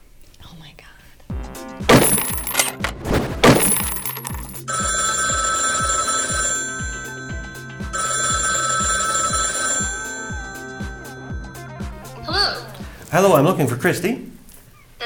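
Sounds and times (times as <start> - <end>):
rhythmic backing: 1.3 - 13.5
clattering jingle: 1.9 - 11.6
telephone ringing with an electronic trill: 3.8 - 12.9
speech: 13.2 - 14.3.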